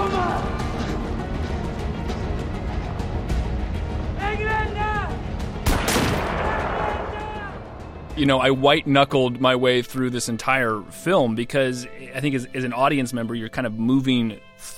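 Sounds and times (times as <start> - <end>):
rumbling war film score: 0.0 - 10.2
gunfire from soldiers shooting in a war film scene: 5.6 - 7.2
speech: 8.2 - 14.7.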